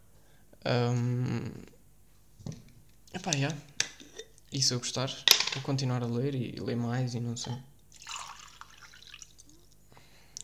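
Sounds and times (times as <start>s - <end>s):
speech: 0.6s - 1.6s, 3.2s - 3.7s, 4.5s - 7.7s
water dripping and trickling: 7.9s - 9.8s.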